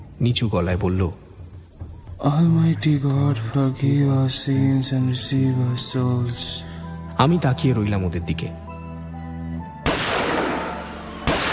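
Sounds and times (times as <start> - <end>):
speech: 0.2 - 1.2, 2.2 - 8.6
gunshots echoing in a stone cave: 9.9 - 11.5.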